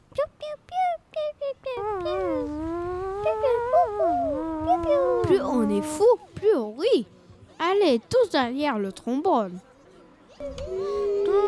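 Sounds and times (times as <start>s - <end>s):
clarinet playing a jazzy phrase: 1.8s - 6.0s
speech: 5.3s - 9.7s, 10.4s - 11.0s.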